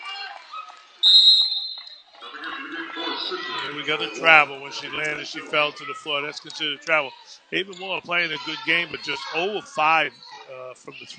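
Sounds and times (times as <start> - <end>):
crowd chatter at a basketball game: 0.0 - 11.1
referee's whistle blast at a basketball game: 1.0 - 2.0
commentator speaking at a basketball game: 2.2 - 10.1
speech: 3.2 - 11.1.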